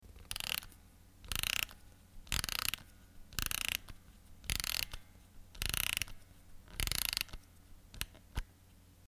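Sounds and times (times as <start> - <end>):
winding a music box: 0.2 - 7.4.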